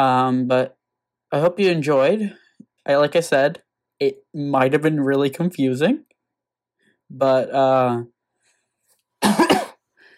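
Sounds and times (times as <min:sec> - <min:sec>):
speech: 0:00.0 - 0:06.1, 0:07.1 - 0:08.1, 0:09.2 - 0:09.4
unwell person coughing: 0:09.2 - 0:09.8.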